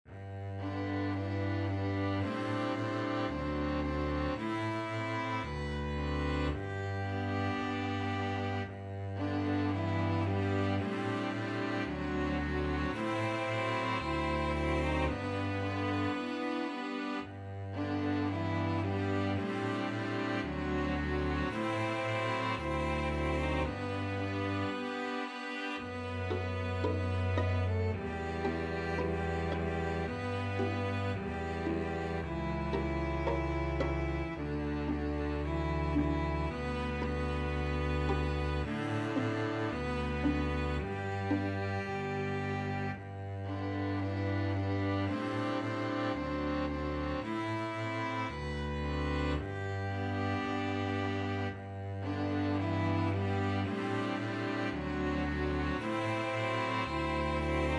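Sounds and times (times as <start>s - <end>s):
string ensemble playing: 0.0s - 57.7s.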